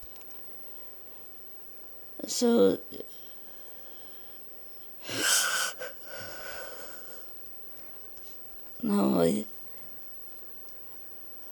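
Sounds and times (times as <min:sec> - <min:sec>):
speech: 0:02.3 - 0:03.2
raspy wheezing breath: 0:05.0 - 0:07.3.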